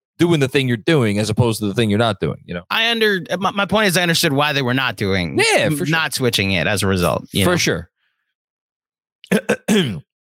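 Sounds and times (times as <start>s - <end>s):
speech: 0.2s - 7.9s, 9.3s - 10.1s
man clearing his throat: 9.3s - 10.1s.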